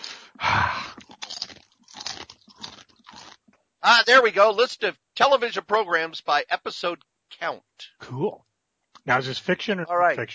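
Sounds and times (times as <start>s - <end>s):
loud crunching and chewing of potato chips: 0.9s - 3.5s
speech: 3.8s - 10.3s.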